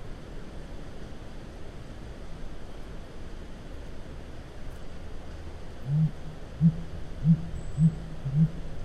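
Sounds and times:
North American blue grouse deep low muffled hoots: 0:05.9 - 0:08.7.

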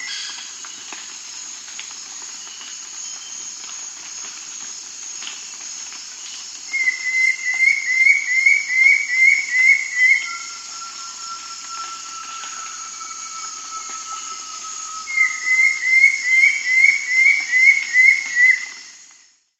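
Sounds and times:
Undulated Antshrike calling in South America: 0:06.8 - 0:18.5.

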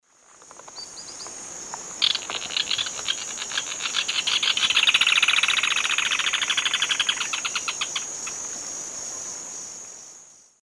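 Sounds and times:
Synallaxis propinqua singing in the Eastern Lowlands of South America: 0:00.7 - 0:01.3, 0:02.0 - 0:08.4.

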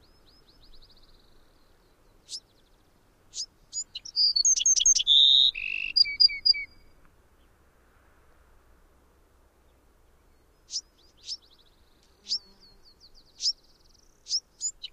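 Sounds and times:
Bewick's wren song of whistles and paired notes: 0:03.4 - 0:06.9.

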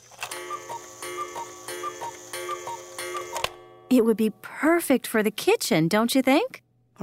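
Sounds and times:
constant buzzing electrical hum: 0:00.0 - 0:05.6
electric oak cuckoo clock ticking: 0:00.3 - 0:03.6
speech: 0:03.9 - 0:07.0.

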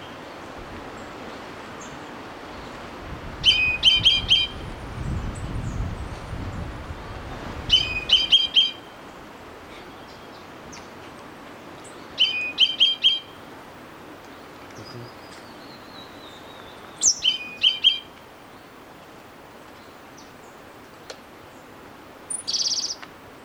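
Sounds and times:
quiet background hiss: 0:00.0 - 0:23.4
orange-bellied euphonia calling in Ecuador: 0:03.4 - 0:04.6, 0:07.7 - 0:09.0, 0:12.2 - 0:13.4, 0:14.4 - 0:18.7, 0:22.2 - 0:23.1.

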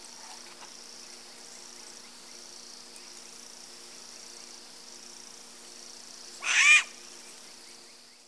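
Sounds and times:
soft background hiss: 0:00.0 - 0:08.2
striped owl Asio clamator alarm screech: 0:06.4 - 0:07.0.

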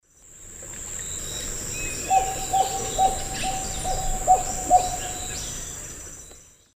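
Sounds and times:
Heliornis fulica seven-noted call in Eastern Lowlands of South America: 0:02.0 - 0:05.6.

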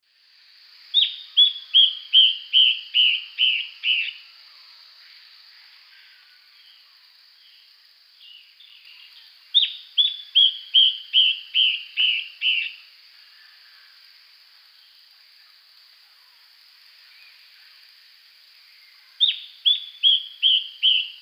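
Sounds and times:
Hypocnemis hypoxantha song: 0:00.8 - 0:14.1, 0:14.7 - 0:17.9, 0:18.6 - 0:21.1.

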